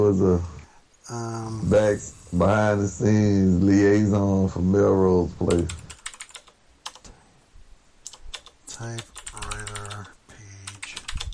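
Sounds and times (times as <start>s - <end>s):
speech: 0.0s - 0.5s, 1.1s - 5.8s, 8.8s - 9.1s
typewriter keys clacking: 5.5s - 7.0s, 8.1s - 11.3s.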